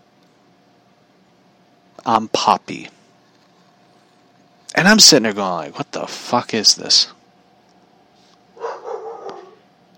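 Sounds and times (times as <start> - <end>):
speech: 2.0 - 3.0, 4.7 - 7.2
neighbor's dog barking outside: 8.6 - 9.6.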